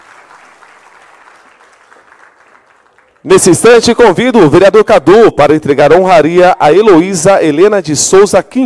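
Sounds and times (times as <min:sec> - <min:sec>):
audience applause: 0:00.0 - 0:03.4
speech: 0:03.2 - 0:08.6.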